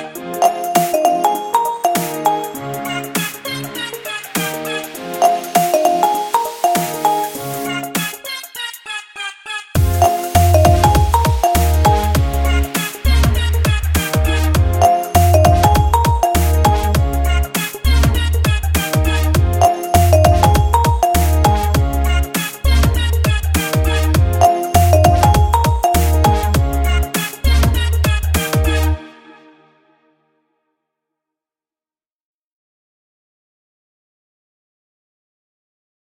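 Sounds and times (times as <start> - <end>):
full drum kit loop: 0.4 - 8.2, 9.8 - 28.9.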